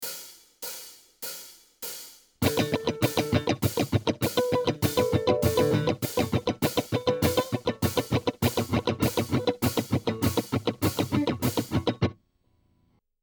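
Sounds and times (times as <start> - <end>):
guitar strumming: 2.4 - 12.2.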